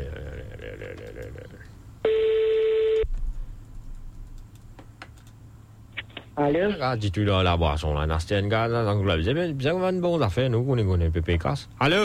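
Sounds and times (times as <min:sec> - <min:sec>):
telephone ring tone on a line while a call is placed: 0:02.1 - 0:03.0
speech: 0:06.4 - 0:12.0.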